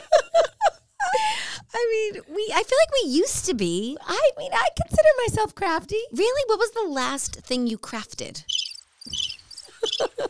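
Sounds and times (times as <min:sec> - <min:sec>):
laughter: 0:00.0 - 0:01.3, 0:09.7 - 0:10.2
speech: 0:01.9 - 0:09.2
crickets chirping in high-pitched trills: 0:08.4 - 0:10.2.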